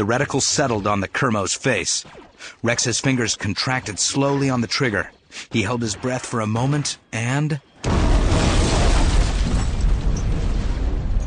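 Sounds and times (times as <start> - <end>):
speech: 0.0 - 8.0
deep rolling explosion rumble: 7.8 - 11.2.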